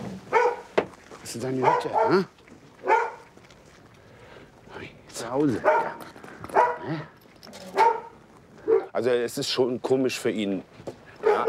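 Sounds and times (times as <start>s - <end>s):
dogs next door barking with a whiny yelping tone: 0.3s - 0.7s, 1.5s - 3.3s, 5.6s - 9.0s, 11.2s - 11.4s
speech: 1.3s - 2.4s, 5.3s - 6.1s, 6.8s - 7.1s, 9.0s - 10.8s.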